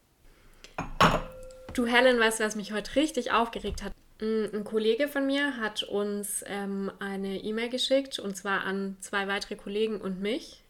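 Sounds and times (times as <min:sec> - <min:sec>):
two glasses clinking in a toast: 0:00.8 - 0:01.8
speech: 0:01.8 - 0:10.6.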